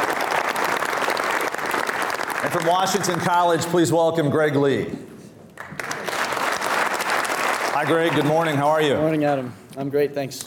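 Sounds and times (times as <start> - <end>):
audience applause: 0.0 - 3.7, 5.6 - 9.0
speech: 2.4 - 5.1, 7.8 - 10.4.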